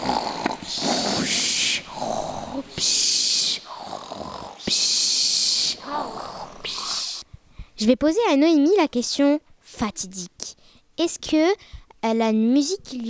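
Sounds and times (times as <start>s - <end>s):
voice imitating exaggerated snoring of a dad and mum: 0.0s - 7.2s
speech: 7.8s - 10.4s, 11.0s - 13.0s.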